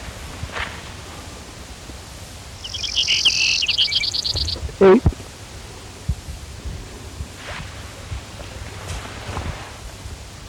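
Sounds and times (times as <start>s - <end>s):
hiss: 0.0s - 10.4s
Brewer's sparrow song: 2.3s - 5.1s
speech: 4.8s - 5.1s.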